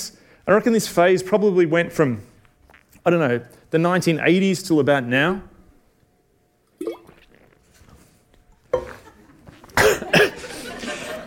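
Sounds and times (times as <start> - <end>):
speech: 0.5 - 2.3, 3.0 - 5.5
wet swallowing: 6.8 - 7.6
person sipping water: 6.8 - 8.0
laughter: 8.8 - 11.2
person coughing: 9.7 - 10.5.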